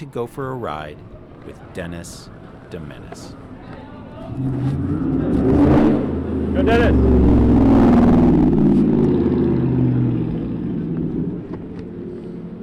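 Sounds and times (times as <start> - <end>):
speech: 0.0 - 5.5, 6.6 - 7.4
muscle car engine rumbling and revving: 4.2 - 12.6.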